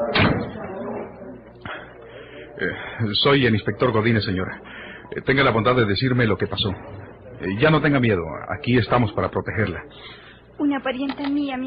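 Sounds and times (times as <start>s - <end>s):
faint voices murmuring: 0.0s - 11.6s
door slamming shut: 0.1s - 0.7s
speech: 2.6s - 11.6s.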